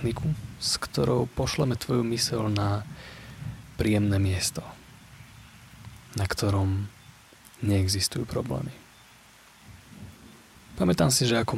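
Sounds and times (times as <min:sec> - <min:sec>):
speech: 0:00.0 - 0:03.2, 0:03.8 - 0:04.8, 0:06.1 - 0:07.0, 0:07.6 - 0:08.8, 0:10.8 - 0:11.5
low rumble of thunder: 0:00.0 - 0:05.0, 0:09.7 - 0:11.5
steady rain during a thunderstorm: 0:00.0 - 0:11.5.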